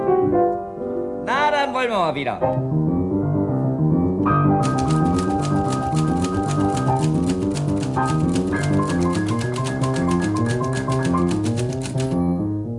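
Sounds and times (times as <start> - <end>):
lively piano tune: 0.0 - 12.7
speech: 1.7 - 2.9
typewriter keystrokes: 4.6 - 12.2.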